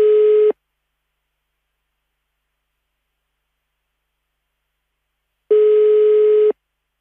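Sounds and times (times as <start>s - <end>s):
ringback tone of an unanswered telephone call: 0.0s - 0.5s, 5.5s - 6.6s.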